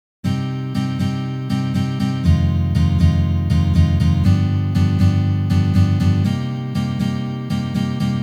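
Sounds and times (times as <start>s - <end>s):
G7 chord exercises: 0.3s - 8.2s.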